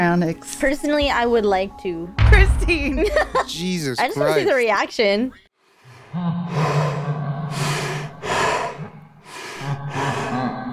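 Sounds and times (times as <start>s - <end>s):
speech: 0.2s - 5.4s, 6.1s - 6.7s
laughter: 2.7s - 4.8s, 9.9s - 10.7s
heavy raspy breathing of a video game animatronic: 5.8s - 10.7s.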